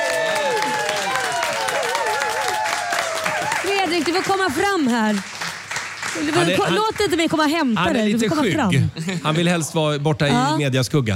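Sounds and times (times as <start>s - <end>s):
whoops: 0.0s - 3.8s
crowd applause: 0.0s - 8.0s
speech: 4.0s - 5.4s, 6.2s - 11.1s.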